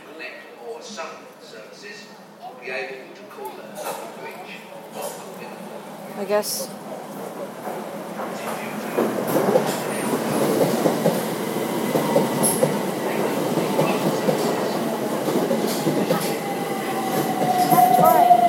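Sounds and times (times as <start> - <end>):
train rumbling alongside a station platform: 4.9 - 18.4
speech: 6.2 - 10.2.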